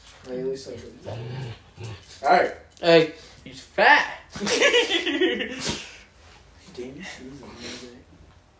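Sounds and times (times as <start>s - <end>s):
speech: 0.2s - 5.9s, 6.8s - 8.0s
dog growling while play-fighting: 0.8s - 2.4s.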